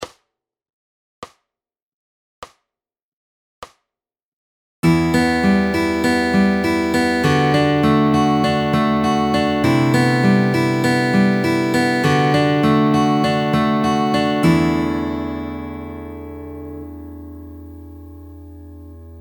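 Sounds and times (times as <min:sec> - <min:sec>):
fingerpicking pattern through all chords: 0:04.8 - 0:19.2.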